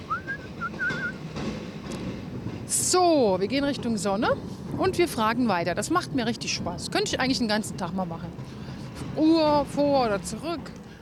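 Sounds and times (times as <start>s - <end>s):
person whistling a short melody: 0.0s - 1.2s
speech: 2.9s - 8.6s, 9.2s - 10.8s.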